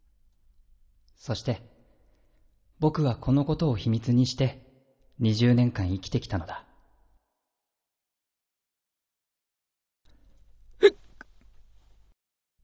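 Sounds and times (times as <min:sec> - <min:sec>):
speech: 0:01.2 - 0:01.8, 0:02.8 - 0:04.6, 0:05.2 - 0:06.6, 0:10.8 - 0:11.0
hiccups: 0:10.8 - 0:11.4.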